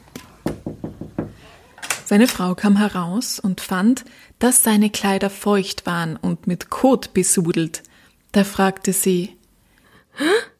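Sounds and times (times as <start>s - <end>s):
hollow knocking on a door: 0.4s - 1.4s
speech: 2.1s - 9.4s, 10.2s - 10.5s.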